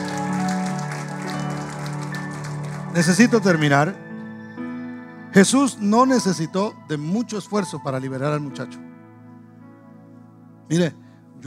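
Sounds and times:
audience applauding loudly: 0.0s - 3.9s
speech: 3.0s - 4.0s, 5.3s - 8.9s, 10.7s - 11.4s.

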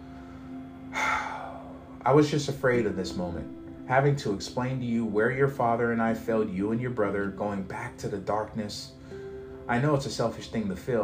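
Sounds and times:
woman taking a long laboured breath: 0.0s - 2.0s
speech: 2.0s - 9.0s, 9.7s - 11.0s.

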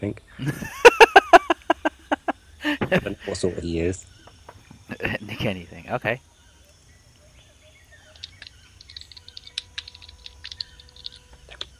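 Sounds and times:
speech: 0.0s - 0.9s, 2.9s - 4.1s, 5.0s - 6.3s
steady low hum: 0.0s - 11.7s
laughter: 0.4s - 3.4s, 4.9s - 5.6s
typing on a computer keyboard: 8.2s - 11.6s.

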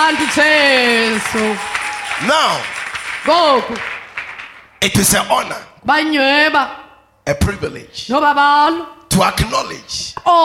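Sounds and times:
speech: 0.0s - 4.0s, 4.8s - 10.4s
crowd clapping steadily: 0.0s - 5.5s.

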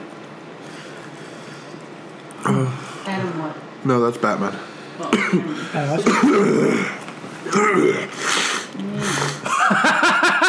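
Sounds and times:
speech: 2.4s - 8.3s
person coughing in rough, phlegmy bursts: 6.0s - 6.8s
laughter: 9.4s - 10.4s.

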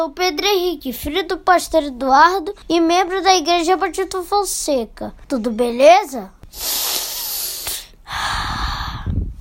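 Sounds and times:
speech: 0.0s - 6.9s
deliberate loud breathing: 6.5s - 9.2s.

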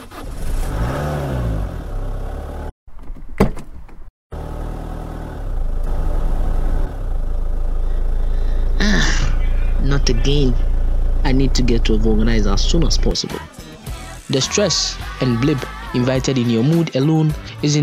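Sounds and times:
car engine revving, cranking and idling: 0.0s - 2.7s, 3.9s - 14.2s
speech: 10.1s - 13.6s, 14.3s - 17.8s.

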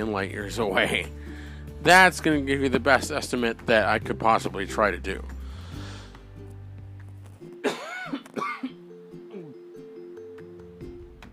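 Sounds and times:
speech: 0.0s - 5.4s
steady soft music: 0.0s - 11.3s
harsh throaty allergy coughs: 7.6s - 8.8s.

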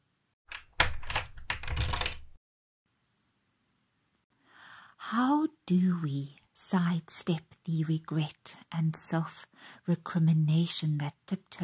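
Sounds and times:
keys turning in door locks: 0.5s - 2.3s
speech: 5.1s - 11.6s.

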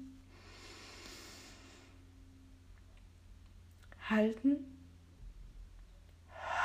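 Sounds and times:
steady low hum: 0.0s - 4.0s, 4.6s - 6.6s
slow deep inhale through the nose: 0.3s - 2.1s, 6.3s - 6.6s
speech: 4.1s - 4.8s.

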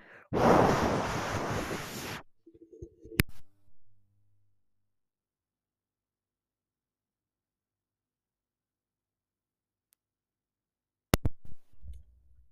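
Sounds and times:
breathy wind noise from air blown onto a microphone: 0.3s - 2.2s.

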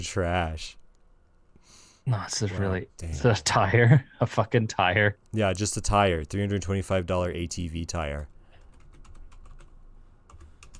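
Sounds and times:
speech: 0.0s - 0.8s, 2.1s - 8.3s
typing on a computer keyboard: 8.2s - 10.7s.

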